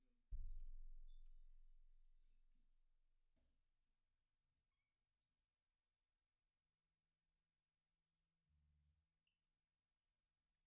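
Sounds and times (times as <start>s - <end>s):
bass drum: 0.3s - 3.2s.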